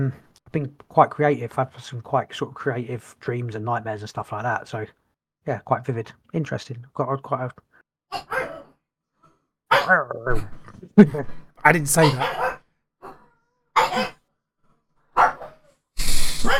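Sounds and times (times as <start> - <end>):
speech: 0.0 - 8.4, 9.9 - 12.4
dog barking: 8.2 - 8.7, 9.7 - 10.1, 12.0 - 13.2, 15.2 - 15.6.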